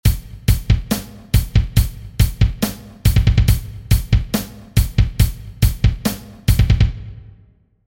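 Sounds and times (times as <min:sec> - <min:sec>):
metal drum pattern: 0:00.0 - 0:07.3.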